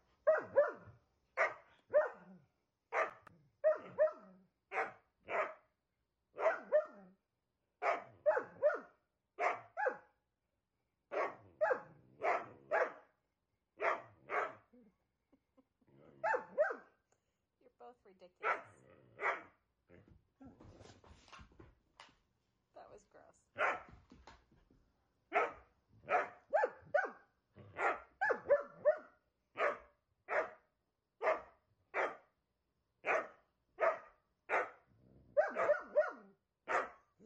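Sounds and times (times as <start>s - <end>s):
dogs barking in sharp yaps: 0.2s - 2.3s, 2.9s - 5.6s, 6.4s - 7.0s, 7.8s - 10.0s, 11.1s - 13.1s, 13.8s - 14.7s, 16.2s - 16.9s, 18.4s - 19.5s, 23.6s - 23.9s, 25.3s - 30.6s, 31.2s - 32.2s, 33.0s - 34.8s, 35.4s - 37.0s
dog growling low: 18.7s - 20.6s.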